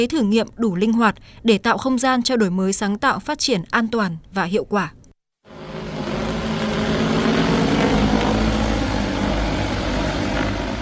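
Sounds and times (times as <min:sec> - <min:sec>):
speech: 0:00.0 - 0:05.0
delivery drone motors whirring on take-off on a test flight in Cần Giờ: 0:05.5 - 0:10.8.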